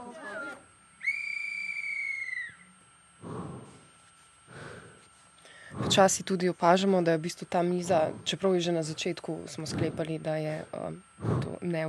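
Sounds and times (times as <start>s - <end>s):
conductor's whistle blast signalling train departure: 1.0s - 2.6s
talk: 5.8s - 11.8s
speech: 5.9s - 11.8s.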